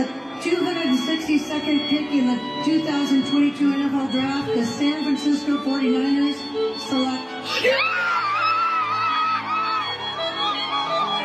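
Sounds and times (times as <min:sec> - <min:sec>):
speech: 0:00.0 - 0:08.2
family screaming and cheering in celebration: 0:07.5 - 0:11.2.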